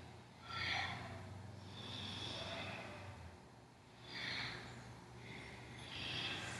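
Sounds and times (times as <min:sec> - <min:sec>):
forceful breathing in a seesaw exercise while leaning side to side: 0:00.0 - 0:06.5
low steady hum: 0:00.0 - 0:06.5.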